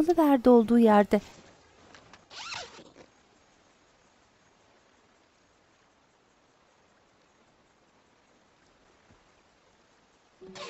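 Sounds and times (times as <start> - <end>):
speech: 0.0 - 1.4
soft steady hiss: 0.0 - 10.6
tent zipper being pulled closed: 2.3 - 3.1, 10.4 - 10.6.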